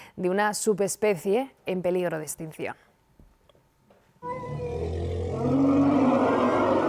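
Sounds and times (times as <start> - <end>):
speech: 0.2 - 2.8
elephant's shrill drawn-out cry during birth: 4.2 - 6.8.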